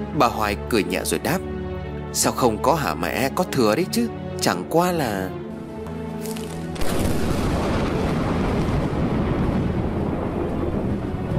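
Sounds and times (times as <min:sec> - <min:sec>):
speech: 0:00.1 - 0:05.4
thunder booming behind a garden in a storm: 0:06.7 - 0:11.3.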